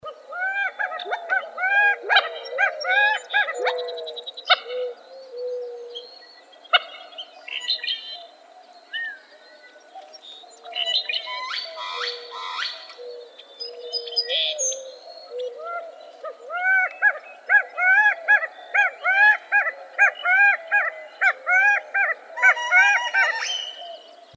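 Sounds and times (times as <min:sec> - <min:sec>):
Gambel's quail calling: 0:00.0 - 0:06.0, 0:06.7 - 0:07.8, 0:10.7 - 0:24.1.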